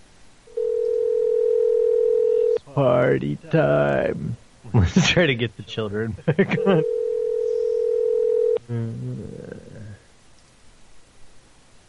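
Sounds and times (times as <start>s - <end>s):
telephone dial tone: 0.5s - 2.6s, 6.8s - 8.6s
speech: 2.8s - 7.0s, 8.7s - 9.9s
laughter: 6.0s - 6.9s.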